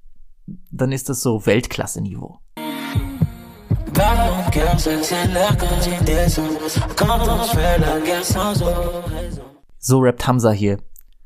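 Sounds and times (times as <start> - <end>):
speech: 0.5 - 3.1, 4.0 - 10.9
loud dense music beat with layered melodic synths: 2.6 - 9.6
deep heartbeat sound effect thumps: 3.0 - 9.5.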